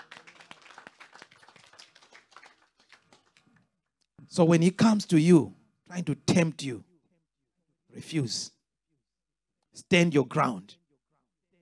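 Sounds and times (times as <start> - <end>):
audience clapping hands: 0.0 - 3.8
speech: 4.3 - 6.9, 8.0 - 8.6, 9.8 - 10.8.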